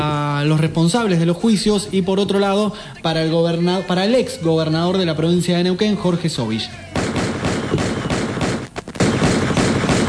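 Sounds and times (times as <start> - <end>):
speech: 0.0 - 6.8
rapid gunfire: 6.9 - 10.0.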